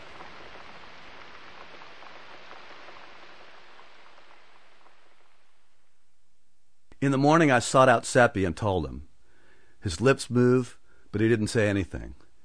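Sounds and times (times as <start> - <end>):
steady rain pattering against window panes: 0.0 - 6.0
speech: 7.0 - 9.1, 9.8 - 12.2.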